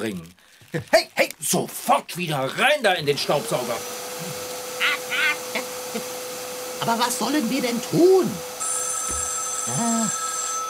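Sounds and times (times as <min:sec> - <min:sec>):
speech: 0:00.0 - 0:04.4, 0:06.0 - 0:06.2, 0:06.8 - 0:08.5, 0:09.1 - 0:10.2
telephone ringing: 0:08.6 - 0:10.6.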